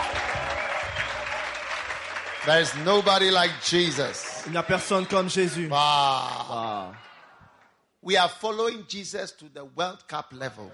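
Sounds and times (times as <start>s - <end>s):
audience applauding: 0.0s - 7.3s
speech: 2.4s - 7.1s, 8.0s - 10.7s.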